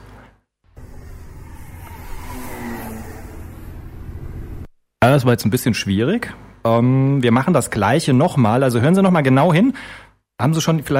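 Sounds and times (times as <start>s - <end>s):
model airplane engine droning with a buzzing whine: 0.8s - 4.7s
speech: 5.1s - 10.9s.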